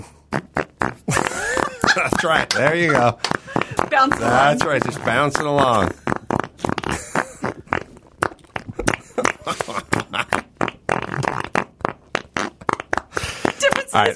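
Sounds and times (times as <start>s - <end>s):
loud fart noises made in a studio: 0.0s - 14.1s
laughter: 1.1s - 6.0s, 6.9s - 7.6s, 8.8s - 10.5s
speech: 2.0s - 6.0s, 9.5s - 10.3s, 14.0s - 14.1s.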